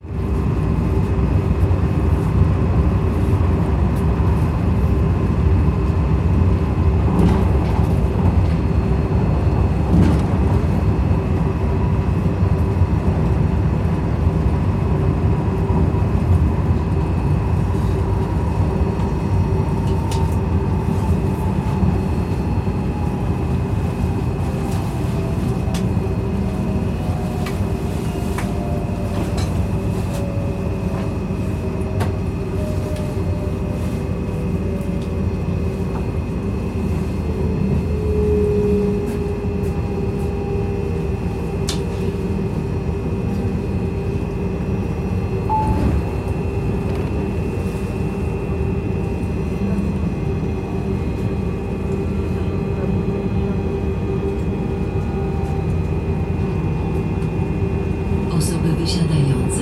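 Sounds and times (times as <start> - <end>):
PKP train approaching a station: 0.0 - 59.6.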